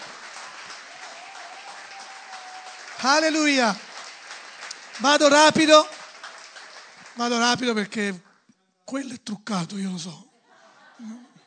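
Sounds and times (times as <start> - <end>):
sustained applause from a large crowd: 0.0 - 8.0
speech: 3.0 - 3.8, 5.0 - 5.9, 7.2 - 8.3, 8.9 - 10.3, 11.0 - 11.2.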